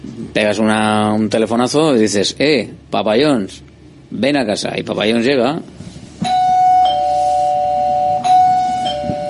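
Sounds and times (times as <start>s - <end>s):
speech: 0.3s - 5.8s
loud two-tone ding-dong doorbell chime: 6.3s - 9.2s.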